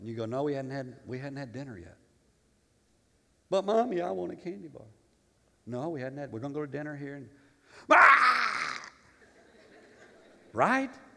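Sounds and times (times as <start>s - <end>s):
speech: 0.0s - 2.0s, 3.5s - 5.0s, 5.6s - 8.1s, 10.5s - 11.0s
adult voice imitating two-year-old's tantrum scream: 7.9s - 9.0s
laughter: 9.0s - 10.6s.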